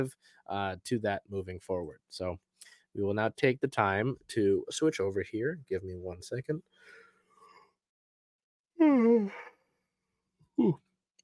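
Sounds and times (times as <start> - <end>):
speech: 0.0 - 7.0, 8.8 - 9.5, 10.6 - 10.9
person yawning: 8.8 - 9.6, 10.6 - 10.9.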